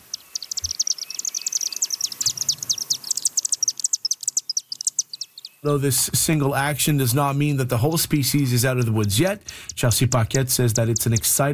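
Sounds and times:
flock of chimney swifts chittering at a chimney roosting site: 0.0s - 11.5s
speech: 5.6s - 11.5s.

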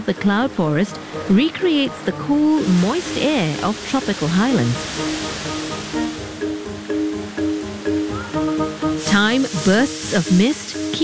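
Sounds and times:
speech: 0.0s - 5.4s, 9.2s - 11.0s
rhythmic musical pattern of sustained tones: 0.0s - 11.0s
indoor waterfall rushing water: 2.4s - 11.0s.

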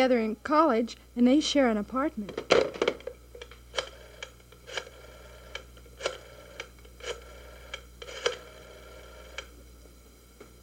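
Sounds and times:
speech: 0.0s - 2.6s
telephone being dialed at a hospital: 3.8s - 8.6s.

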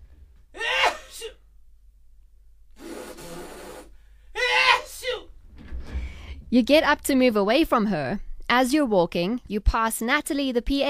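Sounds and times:
person sneezing: 0.6s - 1.4s, 2.8s - 5.2s
nose blowing: 2.7s - 4.1s
speech: 6.5s - 10.8s.

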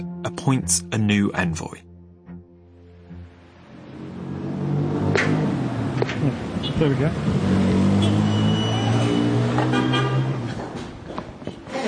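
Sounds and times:
speech: 0.0s - 1.9s, 6.2s - 7.9s, 9.6s - 10.0s
vehicle engine rumble on a city street: 3.4s - 8.8s
car honks: 7.8s - 10.6s
long loud car horn blaring: 7.9s - 10.5s.

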